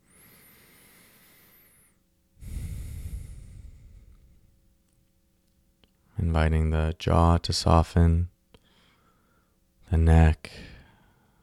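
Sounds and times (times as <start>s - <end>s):
deep breath during guided meditation: 0.0s - 4.6s, 8.6s - 9.6s, 10.5s - 11.4s
speech: 6.2s - 8.3s, 9.9s - 10.7s.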